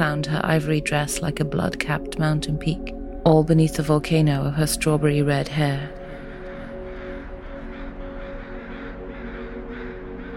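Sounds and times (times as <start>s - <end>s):
speech: 0.0s - 6.0s
crows cawing: 5.7s - 10.3s.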